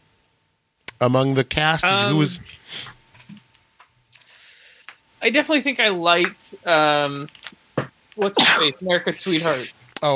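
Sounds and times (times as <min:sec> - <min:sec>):
speech: 0:01.0 - 0:03.0, 0:05.2 - 0:07.4, 0:08.2 - 0:10.1
sneeze: 0:08.4 - 0:08.8.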